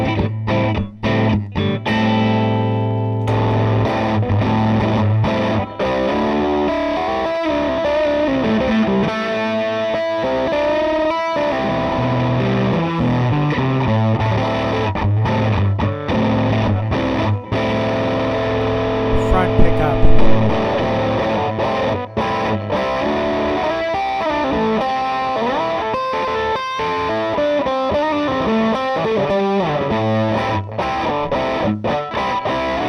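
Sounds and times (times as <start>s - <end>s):
electric guitar through a fuzz pedal on the middle pickup: 0.0s - 32.8s.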